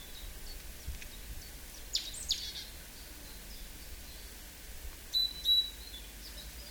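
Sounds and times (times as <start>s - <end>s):
great tit Parus major calls: 0.0s - 4.4s, 5.1s - 6.6s.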